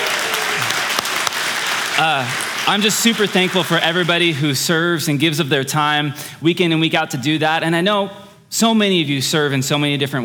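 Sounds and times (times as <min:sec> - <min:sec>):
audience applause: 0:00.0 - 0:04.4
speech: 0:02.0 - 0:10.2.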